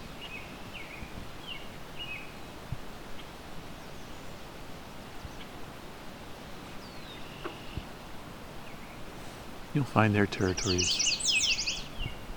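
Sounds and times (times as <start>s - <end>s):
steady broadband outdoor noise: 0.0s - 12.3s
speech: 9.8s - 11.2s
swamp sparrow singing: 10.4s - 12.2s
brief higher chirps: 10.5s - 11.9s.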